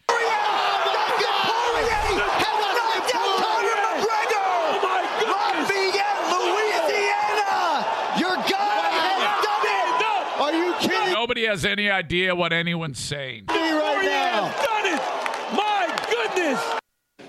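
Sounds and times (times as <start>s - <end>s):
crowd roaring at a fight: 0.0s - 11.2s, 13.5s - 16.8s
commentators shouting excitedly into microphones at a fight: 0.0s - 16.8s
speech: 11.5s - 15.6s.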